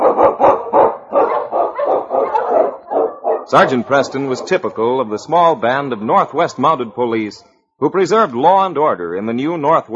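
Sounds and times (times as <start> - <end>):
husky sled dog barking: 0.0 - 4.7
speech: 3.5 - 9.9.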